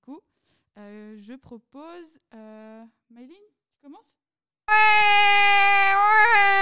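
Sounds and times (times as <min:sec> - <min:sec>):
speech: 0:00.8 - 0:05.6
person imitating a crying baby with their mouth: 0:04.7 - 0:06.6.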